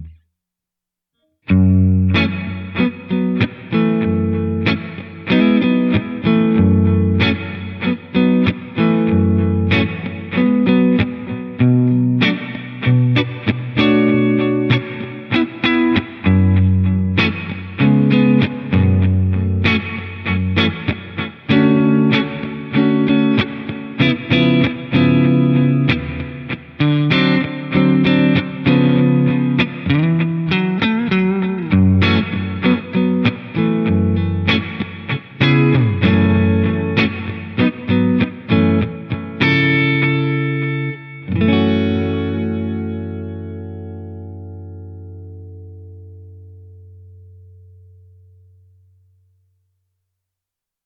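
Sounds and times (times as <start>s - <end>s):
Telecaster electric guitar with single-tap delay: 1.5s - 48.9s.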